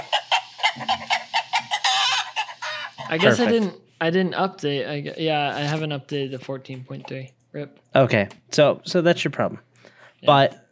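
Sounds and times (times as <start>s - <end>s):
chicken clucking played from a phone's voice assistant: 0.0s - 3.5s
speech: 3.1s - 10.6s.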